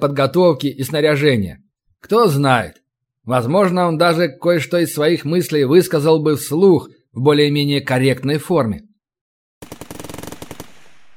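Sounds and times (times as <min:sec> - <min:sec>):
speech: 0:00.0 - 0:08.9
automatic rifle fire in long bursts from inside a factory building: 0:09.6 - 0:11.1.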